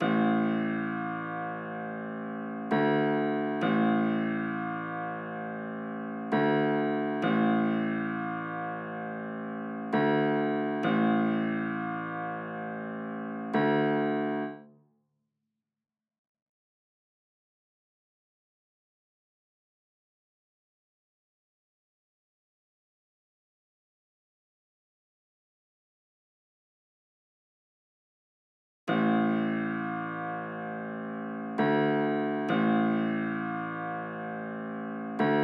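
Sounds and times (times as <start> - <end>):
low piano drill melody loop in A minor at 133 BPM: 0.0 - 14.7, 28.9 - 35.4.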